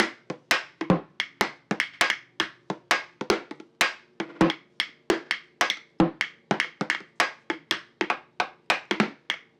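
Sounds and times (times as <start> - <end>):
swung percussion loop: 0.0 - 9.5.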